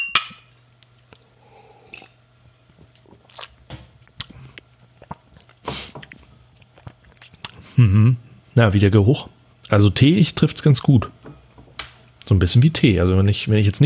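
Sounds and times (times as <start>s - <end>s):
glasses clinking in a toast: 0.0s - 0.6s
quiet sipping: 1.1s - 8.3s
speech: 7.8s - 11.2s, 12.3s - 13.8s.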